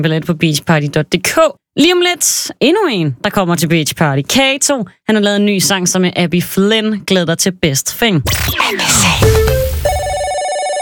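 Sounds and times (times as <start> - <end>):
speech: 0.0 - 9.8
electronic telephone ringtone: 9.0 - 10.7.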